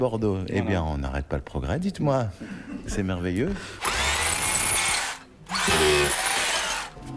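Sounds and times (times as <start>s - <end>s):
speech: 0.0s - 4.0s
power screwdriver turning screws: 3.8s - 7.0s.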